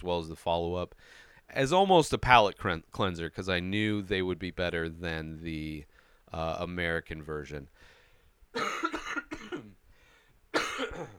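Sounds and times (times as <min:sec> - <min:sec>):
speech: 0:00.0 - 0:07.9, 0:08.5 - 0:09.0, 0:11.0 - 0:11.1
harsh coughs: 0:08.6 - 0:09.8, 0:10.5 - 0:11.1.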